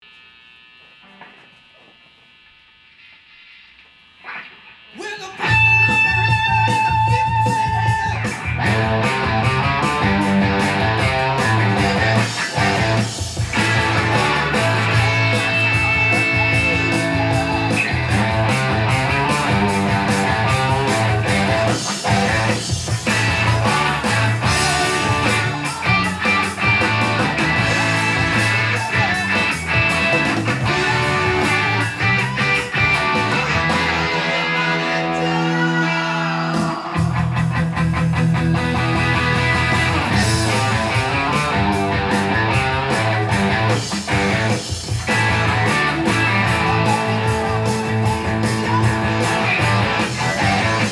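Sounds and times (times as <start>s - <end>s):
electric guitar with humbuckers through a 1964 Fender Super Reverb amplifier: 0.0s - 50.9s.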